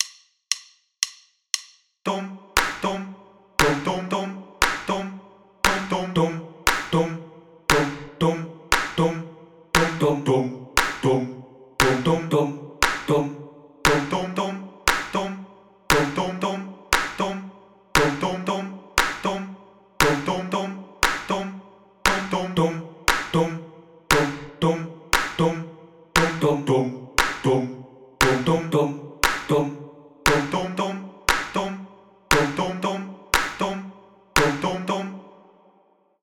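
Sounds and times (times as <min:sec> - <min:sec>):
bass clap: 0:02.6 - 0:03.0, 0:03.6 - 0:09.2, 0:09.8 - 0:10.2, 0:10.8 - 0:11.2, 0:11.8 - 0:13.2, 0:13.9 - 0:17.4, 0:18.0 - 0:18.4, 0:19.0 - 0:19.4, 0:20.0 - 0:21.5, 0:22.1 - 0:24.6, 0:25.2 - 0:25.6, 0:26.2 - 0:26.6, 0:27.2 - 0:27.6, 0:28.2 - 0:29.6, 0:30.3 - 0:30.7, 0:31.3 - 0:32.8, 0:33.4 - 0:33.8, 0:34.4 - 0:34.8.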